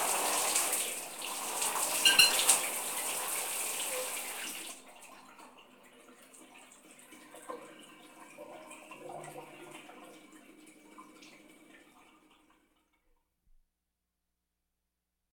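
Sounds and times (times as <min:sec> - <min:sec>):
house shower ending: 0:00.0 - 0:12.8.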